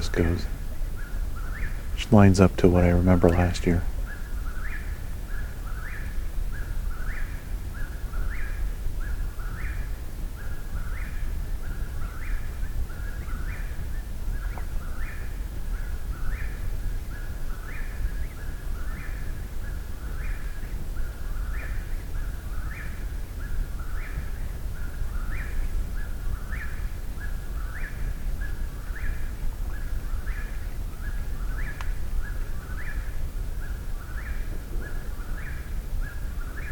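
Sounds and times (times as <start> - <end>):
bird singing repeated phrase at night: 0.0 - 0.6, 1.5 - 4.3
constant low rumble of night-time noise: 0.0 - 36.7
speech: 0.1 - 0.6, 2.1 - 3.9.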